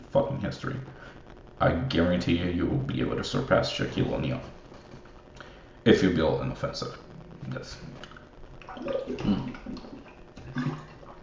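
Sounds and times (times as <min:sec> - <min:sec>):
speech: 0:00.1 - 0:04.6, 0:05.8 - 0:08.1, 0:08.8 - 0:09.9, 0:10.6 - 0:10.9
person drinking water from a glass: 0:08.0 - 0:11.2
soft slosh of water in a glass: 0:08.0 - 0:11.2.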